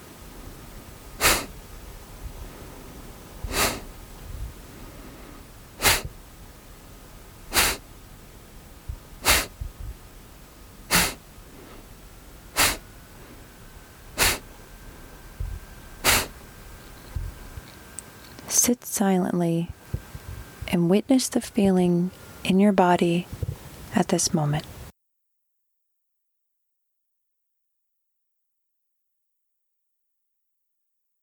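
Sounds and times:
sharp forceful nasal exhales during kapalabhati breathing: 0:01.2 - 0:01.6, 0:03.4 - 0:04.0, 0:04.6 - 0:06.2, 0:07.5 - 0:07.9, 0:09.2 - 0:09.8, 0:10.8 - 0:14.7, 0:16.0 - 0:16.5
speech: 0:18.5 - 0:19.8, 0:20.8 - 0:23.4, 0:24.0 - 0:24.7.

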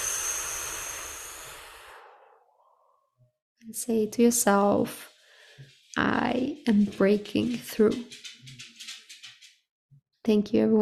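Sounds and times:
long slow exhale during a breathing exercise: 0:00.0 - 0:03.1
speech: 0:03.7 - 0:08.4, 0:10.3 - 0:10.8.

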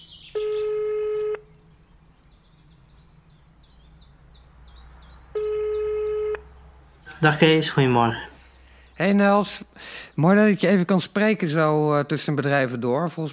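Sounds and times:
faint bird chirps: 0:00.0 - 0:07.4
ringback tone of an outgoing telephone call: 0:00.4 - 0:01.5, 0:05.3 - 0:06.4
speech: 0:07.2 - 0:08.3, 0:09.0 - 0:13.3.

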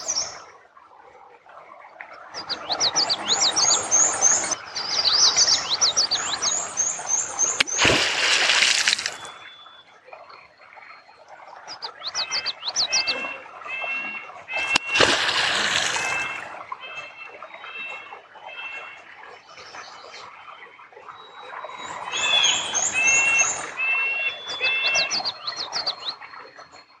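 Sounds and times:
birds chirping and whistling at a beaver dam: 0:02.4 - 0:09.8, 0:11.8 - 0:16.4, 0:21.6 - 0:26.2
beaver tail smacking the water surface: 0:07.6 - 0:09.5, 0:14.5 - 0:16.6.

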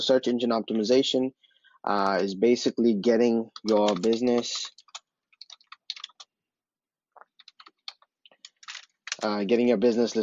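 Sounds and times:
speech: 0:00.0 - 0:04.8, 0:09.2 - 0:10.2
typing on a computer keyboard: 0:03.5 - 0:06.3, 0:07.2 - 0:09.3.

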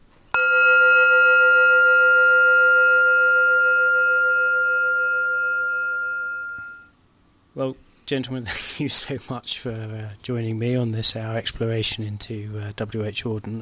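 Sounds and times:
gong strike: 0:00.4 - 0:06.8
speech: 0:07.6 - 0:13.6.

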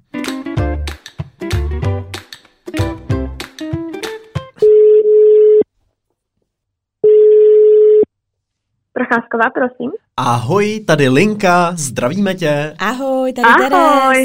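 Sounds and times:
music: 0:00.0 - 0:04.6
telephone ringback tone of an outgoing call: 0:04.6 - 0:05.6, 0:07.0 - 0:08.1
speech: 0:09.1 - 0:14.2.

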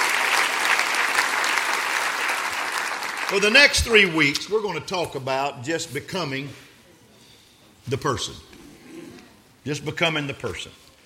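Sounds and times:
audience applauding: 0:00.0 - 0:04.2
speech: 0:03.3 - 0:06.6, 0:07.9 - 0:08.6, 0:09.6 - 0:10.8.

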